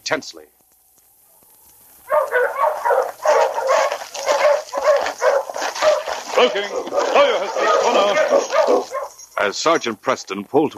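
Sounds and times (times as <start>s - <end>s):
speech: 0.1s - 0.6s, 6.4s - 10.7s
team of sled dogs barking and yelping: 1.3s - 9.6s.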